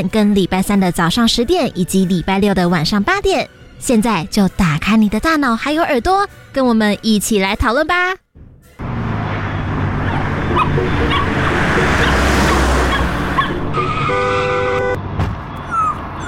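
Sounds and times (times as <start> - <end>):
speech: 0.0 - 8.2
car rushing past: 8.6 - 16.2
loud traffic noise: 8.6 - 16.2
small dog yelping and whimpering after being hit by a car: 10.0 - 11.3, 15.6 - 16.2.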